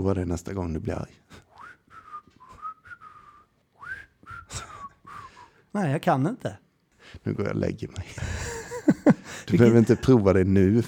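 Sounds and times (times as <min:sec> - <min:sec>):
speech: 0:00.0 - 0:01.5, 0:05.8 - 0:06.6, 0:07.2 - 0:08.4, 0:09.0 - 0:10.8
person whistling a short wavering tune: 0:01.5 - 0:05.6
laughter: 0:08.3 - 0:10.2.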